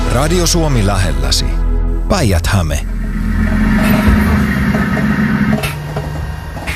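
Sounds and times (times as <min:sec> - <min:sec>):
speech: 0:00.1 - 0:03.7
city library bus engine running in Lahti, Finland: 0:02.9 - 0:06.7.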